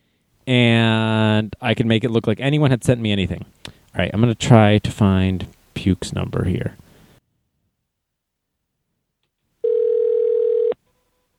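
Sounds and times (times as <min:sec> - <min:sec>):
speech: 0:00.5 - 0:00.7, 0:01.7 - 0:06.8
telephone ringback tone while calling: 0:09.6 - 0:10.8.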